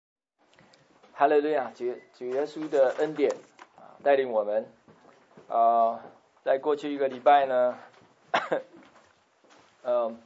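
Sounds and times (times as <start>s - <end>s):
speech: 1.2s - 4.8s, 5.5s - 7.9s, 8.5s - 8.7s, 9.8s - 10.2s
dry coughing from someone with a persistent cough: 8.3s - 8.9s.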